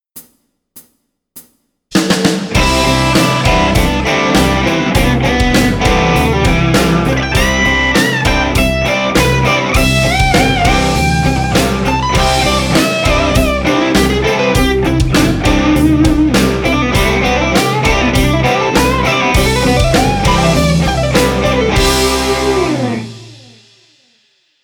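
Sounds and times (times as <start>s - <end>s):
guitar playing pentatonic in E minor seventh: 2.5s - 23.8s.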